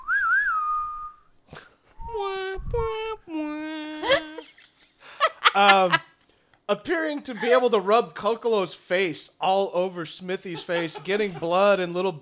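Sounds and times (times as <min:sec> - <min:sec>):
person whistling a short wavering melody: 0:00.0 - 0:01.3
person making loud drawn-out vocal sounds and yelps: 0:02.2 - 0:04.4
laughter: 0:04.0 - 0:06.0, 0:07.3 - 0:07.7, 0:10.4 - 0:11.8
speech: 0:06.8 - 0:12.1.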